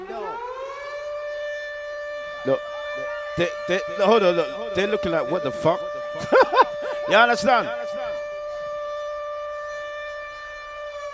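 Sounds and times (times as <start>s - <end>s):
siren sound effect: 0.0s - 11.1s
speech: 2.4s - 8.0s
laughter: 6.1s - 8.2s.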